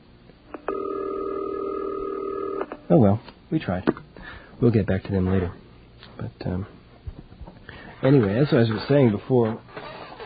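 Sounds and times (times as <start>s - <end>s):
soft phone line clicks: 0.5s - 2.8s
telephone ringing tone: 0.5s - 2.8s
speech: 2.9s - 6.8s, 8.0s - 9.8s.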